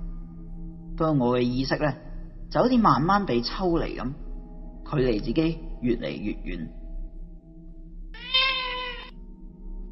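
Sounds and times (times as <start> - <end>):
low hum: 0.0 - 9.9
speech: 1.0 - 4.2, 4.9 - 6.8
cat-like meow: 8.2 - 9.2.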